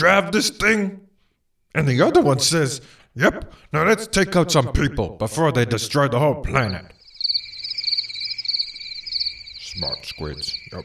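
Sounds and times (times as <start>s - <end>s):
speech: 0.0s - 1.0s, 1.7s - 7.0s, 9.8s - 10.8s
crickets chirping: 6.5s - 10.8s.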